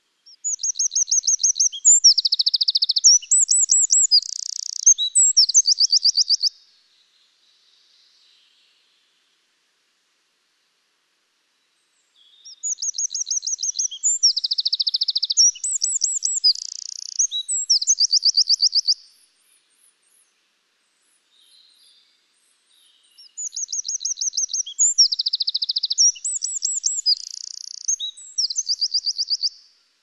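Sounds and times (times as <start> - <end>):
wren singing: 0.3 - 6.5, 12.4 - 19.0, 23.1 - 29.6.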